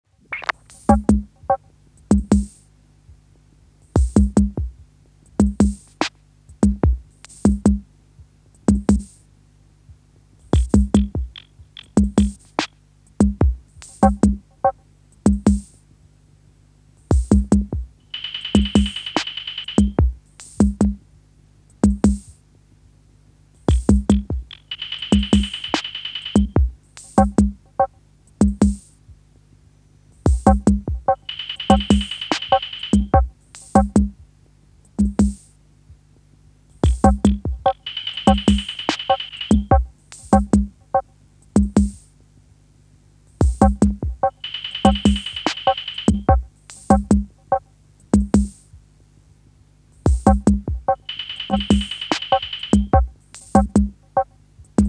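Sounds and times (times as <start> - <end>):
drum machine beat: 0.3 - 3.3, 4.0 - 9.2, 9.9 - 15.8, 17.1 - 21.0, 21.8 - 22.4, 23.6 - 29.2, 30.2 - 36.0, 36.7 - 42.1, 43.3 - 48.9, 50.0 - 54.8.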